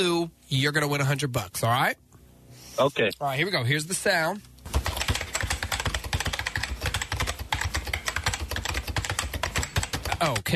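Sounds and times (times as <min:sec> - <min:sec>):
speech: 0:00.0 - 0:04.5, 0:10.2 - 0:10.5
rapid typing on a computer keyboard: 0:04.7 - 0:10.5.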